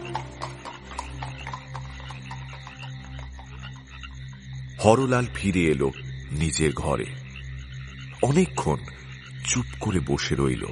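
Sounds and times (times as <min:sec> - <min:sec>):
hooves of two horses pulling a carriage on a street: 0:00.0 - 0:05.4
low droning background: 0:00.0 - 0:10.7
speech: 0:04.8 - 0:07.2, 0:08.2 - 0:10.7.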